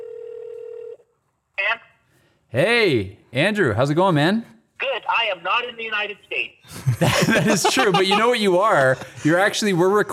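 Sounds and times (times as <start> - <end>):
electronic phone ringing tone: 0.0 - 1.0
speech: 2.5 - 4.6, 5.2 - 10.1
laughter: 6.7 - 10.1.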